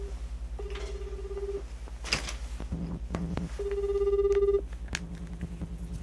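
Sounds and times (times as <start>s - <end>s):
telephone ringback tone while placing a call: 0.0s - 1.6s, 3.6s - 4.6s
low persistent hum: 0.0s - 6.0s.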